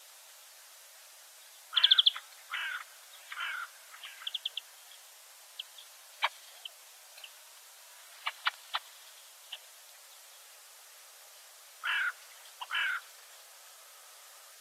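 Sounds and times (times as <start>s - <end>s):
European greenfinch Chloris chloris calls: 1.5s - 7.4s, 8.1s - 10.5s, 11.8s - 13.2s.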